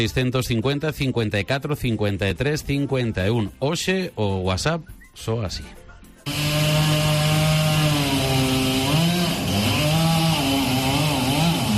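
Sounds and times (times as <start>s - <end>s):
speech: 0.0s - 5.8s
chainsaws felling trees along an avenue: 6.2s - 11.7s.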